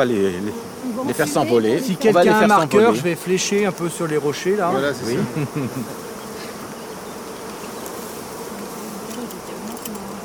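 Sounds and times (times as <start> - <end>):
speech: 0.0 - 6.1
honeybee swarm buzzing: 0.0 - 10.2
laughter: 4.8 - 6.6.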